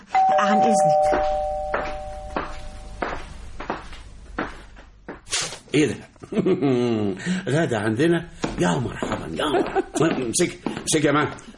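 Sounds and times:
doorbell chime in a home: 0.1 - 3.0
speech: 0.4 - 2.0, 5.8 - 11.5.

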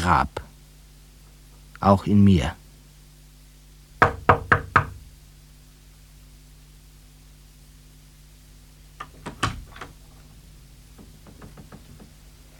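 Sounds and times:
speech: 0.0 - 0.4, 1.8 - 2.6
steady low hum: 0.0 - 12.5
knocking on a door: 4.0 - 5.0, 9.0 - 12.4.

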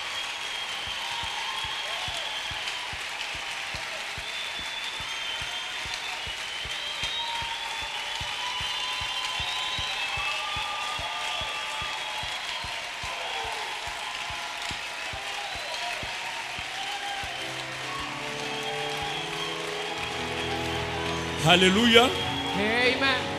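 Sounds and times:
regular clapping beat: 0.0 - 22.6
church congregation cheering in praise at a youth convention: 0.0 - 23.3
speech: 21.5 - 23.3.

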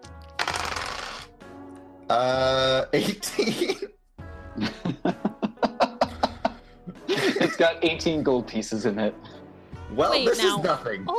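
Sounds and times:
dice rolling on a hard tabletop: 0.4 - 1.3
speech: 2.1 - 4.0, 7.6 - 11.1
laughter: 4.6 - 8.0.

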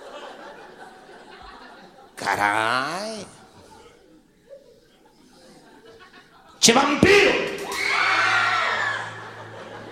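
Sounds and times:
laughter: 0.0 - 6.6, 8.4 - 9.9
speech: 2.2 - 3.4, 6.6 - 7.5
audience screaming at a live comedy show: 7.6 - 9.9.

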